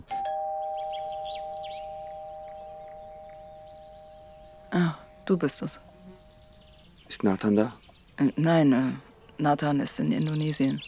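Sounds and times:
doorbell chime at a house: 0:00.0 - 0:06.0
faint outdoor ambience: 0:00.0 - 0:10.8
speech: 0:04.8 - 0:05.9, 0:07.2 - 0:10.8.

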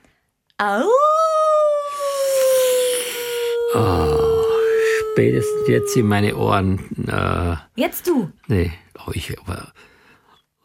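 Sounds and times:
speech: 0:00.6 - 0:01.3, 0:05.2 - 0:09.9
person imitating a wolf howl: 0:00.7 - 0:07.4.

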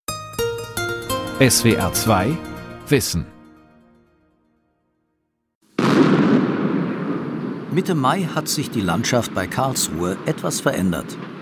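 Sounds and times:
speech: 0:01.4 - 0:03.3, 0:07.8 - 0:11.4
explosive demolition of nuclear power plant cooling towers: 0:05.8 - 0:08.1.

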